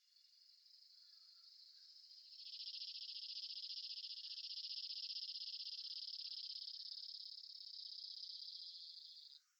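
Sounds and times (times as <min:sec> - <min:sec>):
cicada: 0:00.0 - 0:09.5.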